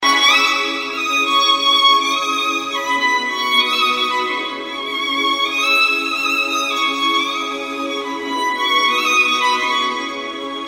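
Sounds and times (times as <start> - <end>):
violin: 0.0 - 10.6.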